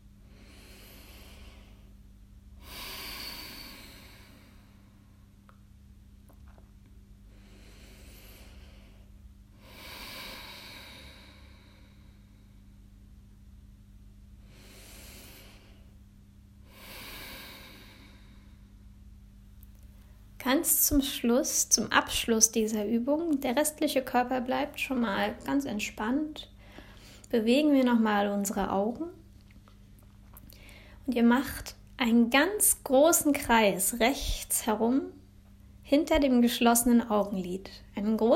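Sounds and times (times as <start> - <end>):
steady low hum: 0.0 - 38.3
deep breathing during a relaxation exercise: 0.2 - 2.0, 2.6 - 5.3, 7.2 - 13.0, 14.4 - 18.8, 26.6 - 27.3, 30.5 - 31.1
speech: 20.5 - 26.5, 27.3 - 29.2, 31.1 - 35.2, 35.9 - 38.3.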